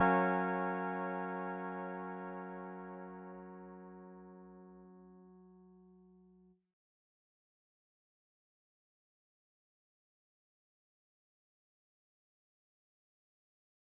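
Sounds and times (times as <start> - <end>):
keys in G flat major: 0.0 - 5.1.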